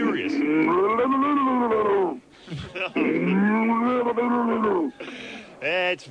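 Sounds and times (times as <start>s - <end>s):
man's voice imitating a drowning cow with gurgling bellowing moos: 0.0s - 2.2s, 2.9s - 4.9s
speech: 5.6s - 6.1s.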